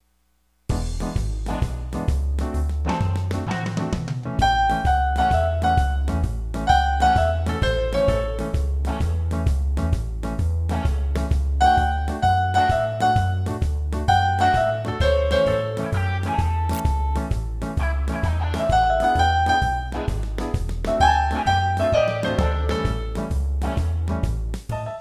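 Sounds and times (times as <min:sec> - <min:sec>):
blues tutti: 0:00.7 - 0:09.4, 0:10.6 - 0:24.9.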